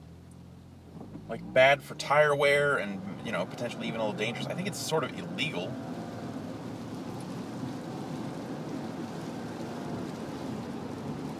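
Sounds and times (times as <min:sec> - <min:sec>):
speech: 0:01.3 - 0:05.9
sudden heavy rain drumming on surfaces: 0:02.4 - 0:11.3.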